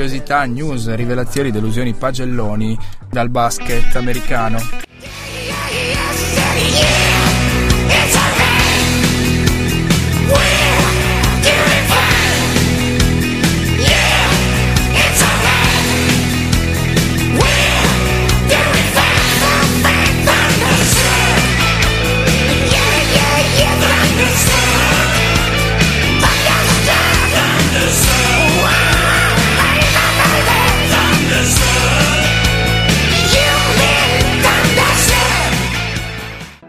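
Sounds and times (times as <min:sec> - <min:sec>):
speech: 0:00.0 - 0:05.2
hard rock track with distorted guitars, pounding drums and shouted vocals: 0:03.6 - 0:36.6.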